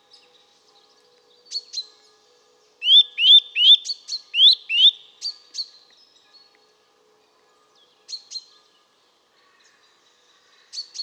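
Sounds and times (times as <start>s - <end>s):
Eurasian nuthatch Sitta europaea giving rising whistled notes: 2.8s - 5.0s.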